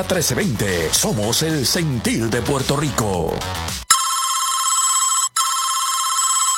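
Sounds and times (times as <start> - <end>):
speech: 0.0 - 3.8
telephone ringing in an electronic trill: 3.9 - 6.5.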